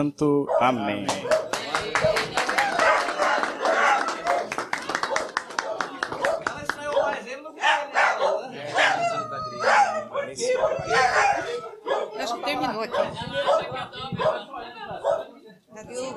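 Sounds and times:
speech: 0.0 - 1.4, 10.4 - 14.9
small dog yipping and barking: 0.5 - 1.5, 2.8 - 4.5, 5.1 - 14.4
overlapping voices: 0.6 - 15.1
brisk clapping: 0.9 - 7.3.

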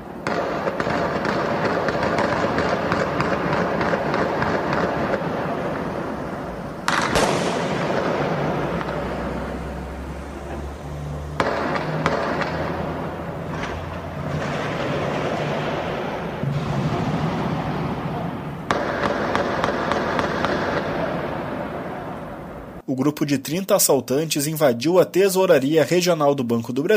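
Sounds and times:
heavier booming explosions: 0.0 - 22.8
rapid gunshots crackling: 0.2 - 5.9, 6.8 - 9.1, 11.4 - 21.3
low rumbling roar: 5.2 - 18.7
speech: 22.9 - 26.9.

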